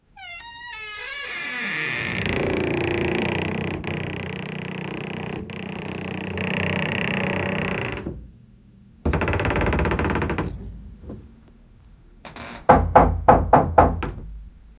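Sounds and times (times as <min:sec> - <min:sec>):
old door squeaking: 0:00.2 - 0:08.2, 0:09.1 - 0:10.9, 0:12.3 - 0:14.2.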